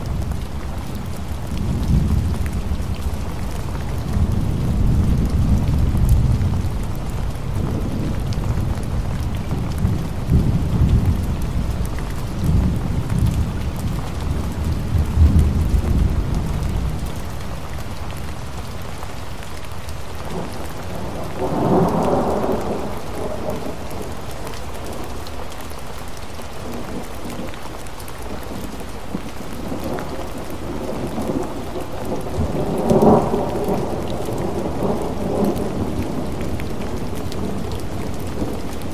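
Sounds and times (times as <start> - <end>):
steady dense rain of a thunderstorm: 0.0 - 38.9
deep rolling thunder: 1.2 - 17.2, 20.3 - 24.3, 29.1 - 38.9.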